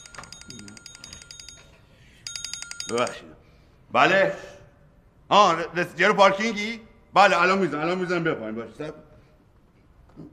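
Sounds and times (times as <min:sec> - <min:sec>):
mobile phone ringtone: 0:00.0 - 0:03.3
low noise: 0:00.0 - 0:10.3
speech: 0:02.9 - 0:04.5, 0:05.3 - 0:09.1.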